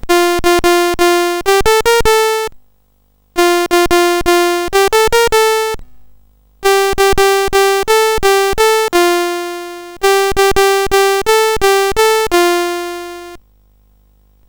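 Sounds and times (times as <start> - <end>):
sid chip sound: 0.1 - 2.5, 3.4 - 5.8, 6.6 - 13.4.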